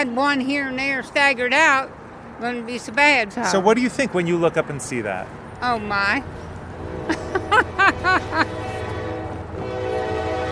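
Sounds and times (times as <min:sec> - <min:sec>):
speech: 0:00.0 - 0:06.4
low rumble of passing coal train rail cars: 0:00.0 - 0:10.5
laughter: 0:07.1 - 0:08.6
coal train horn blaring: 0:08.0 - 0:10.5.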